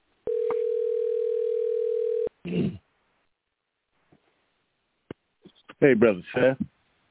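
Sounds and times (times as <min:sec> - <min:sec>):
telephone dial tone while placing a call: 0:00.3 - 0:02.3
speech: 0:05.8 - 0:06.8.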